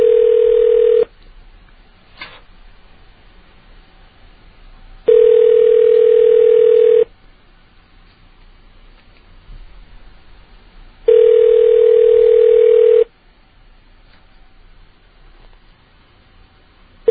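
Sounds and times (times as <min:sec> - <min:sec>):
telephone ringback tone on a call to a convenience store: 0:00.0 - 0:01.1, 0:05.1 - 0:07.1, 0:11.1 - 0:13.1.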